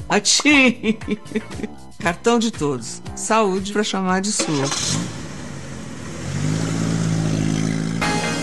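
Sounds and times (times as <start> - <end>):
speech: 0.1 - 5.2
laughter: 0.5 - 1.8
car engine revving: 4.4 - 8.4.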